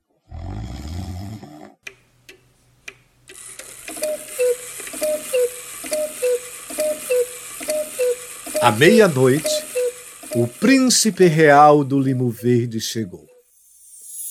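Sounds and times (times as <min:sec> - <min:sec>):
person snoring with a rasping snore: 0:00.2 - 0:01.8
steady rhythmic ticking: 0:03.3 - 0:13.4
speech: 0:08.6 - 0:09.6, 0:10.4 - 0:13.3.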